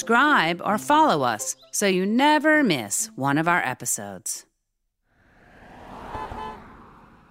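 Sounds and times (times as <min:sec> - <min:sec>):
speech: 0:00.0 - 0:04.5
car passing by on a city street: 0:05.1 - 0:07.2
faint horn-like tone: 0:06.0 - 0:06.9.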